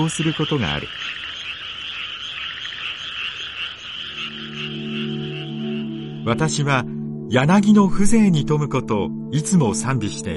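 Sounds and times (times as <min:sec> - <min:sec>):
speech: 0:00.0 - 0:01.2, 0:06.3 - 0:10.3
distant chorus of frogs croaking in Japan: 0:00.0 - 0:07.3.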